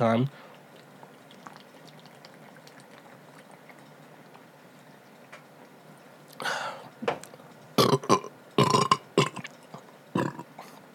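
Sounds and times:
speech: 0.0 - 0.4
loud throaty burps: 7.8 - 9.5, 10.1 - 10.7.

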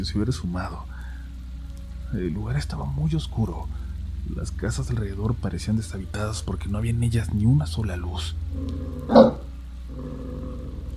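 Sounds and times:
speech: 0.0 - 1.0, 2.1 - 10.9
low steady hum: 0.0 - 10.9
dog barking in the back seat of a car: 9.1 - 9.5.

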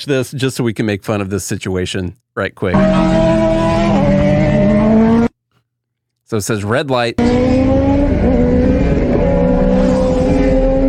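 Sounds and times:
speech: 0.0 - 4.4, 6.3 - 8.4
motorcycle engines roaring through an intersection against a red light: 2.8 - 5.3, 7.2 - 10.8.

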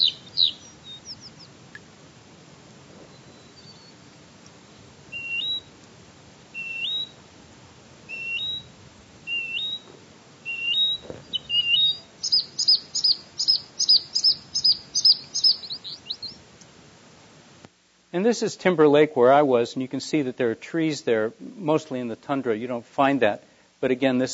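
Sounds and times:
bluethroats, Smith's longspurs, redpolls and sparrows whistling on treeless tundra: 0.0 - 1.6, 3.0 - 5.8, 6.5 - 7.2, 8.0 - 16.4
speech: 18.2 - 24.3.

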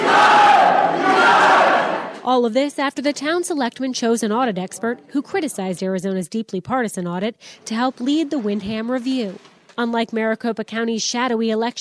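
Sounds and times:
large crowd at a town meeting booing town leaders: 0.0 - 2.2
speech: 2.3 - 11.7.

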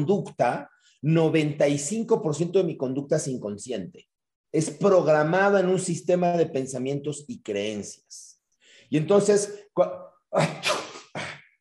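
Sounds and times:
speech: 0.0 - 8.3, 8.9 - 10.8
deliberate put-on sneeze: 10.4 - 11.6.

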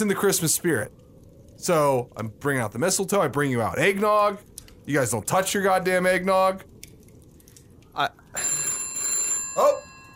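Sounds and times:
speech: 0.0 - 6.7, 8.0 - 8.2
telephone bell ringing: 8.4 - 10.1.

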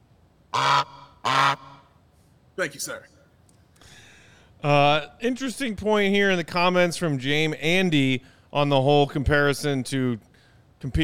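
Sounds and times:
goose honks: 0.5 - 1.9
speech: 0.6 - 1.7, 2.6 - 3.2, 4.6 - 11.0.

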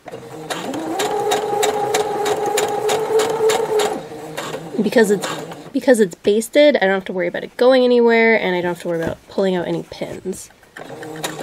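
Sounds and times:
sewing machine stitching slowly along a basted zipper: 0.0 - 5.8, 10.8 - 11.4
speech: 4.8 - 11.3.

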